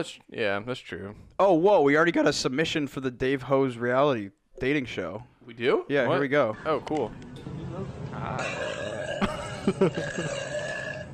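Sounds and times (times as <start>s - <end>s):
speech: 0.0s - 8.8s, 9.6s - 10.5s
long loud burp: 8.3s - 11.1s.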